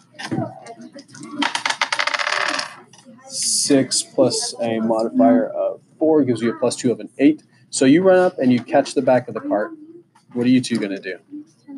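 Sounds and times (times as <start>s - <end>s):
dice rolled across a hard surface: 1.4s - 2.8s
speech: 3.7s - 11.7s.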